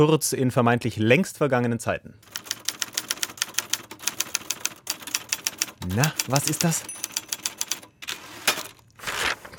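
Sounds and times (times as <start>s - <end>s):
speech: 0.0s - 2.5s, 5.9s - 7.0s
mechanical typewriter clacking: 2.3s - 9.5s.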